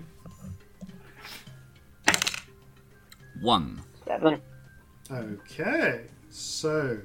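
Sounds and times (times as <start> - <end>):
eight-sided dice tumbling across a tabletop: 2.0 - 2.5
speech: 3.4 - 4.5, 5.1 - 7.0.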